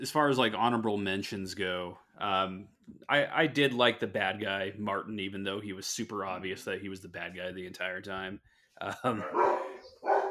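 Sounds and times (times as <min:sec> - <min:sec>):
speech: 0:00.0 - 0:10.2
dogs barking: 0:09.2 - 0:10.2.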